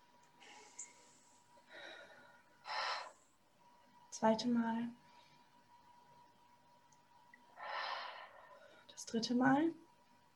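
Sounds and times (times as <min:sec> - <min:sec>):
deep breaths in and out: 0:00.4 - 0:03.5, 0:07.5 - 0:08.9
speech: 0:04.2 - 0:05.0, 0:09.1 - 0:09.8.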